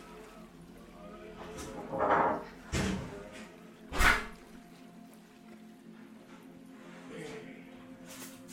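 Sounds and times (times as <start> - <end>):
door scraping and creaking while being eased shut: 1.6 - 3.4, 3.9 - 4.5.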